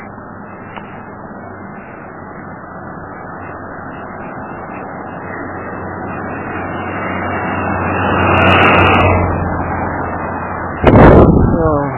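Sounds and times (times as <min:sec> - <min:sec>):
road traffic rumble: 0:00.0 - 0:11.9
vehicle whooshing past: 0:03.0 - 0:11.8.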